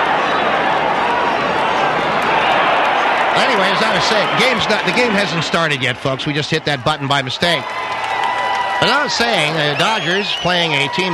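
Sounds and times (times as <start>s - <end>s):
large stadium crowd roaring and cheering: 0.0s - 11.1s
speech: 3.4s - 8.0s, 8.8s - 11.1s.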